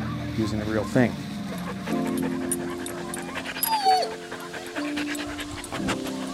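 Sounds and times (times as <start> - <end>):
speech: 0.4 - 2.4
dog panting: 1.5 - 6.3.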